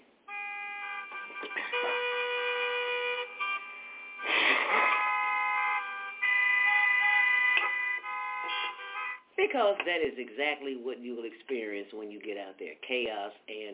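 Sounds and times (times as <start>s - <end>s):
busy street traffic: 0.0s - 9.9s
car horns honking: 0.3s - 9.3s
speech: 9.4s - 13.7s.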